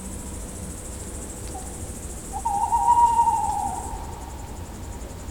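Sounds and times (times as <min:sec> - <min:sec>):
tawny owl giving a drawn-out hoot: 0:01.5 - 0:04.9.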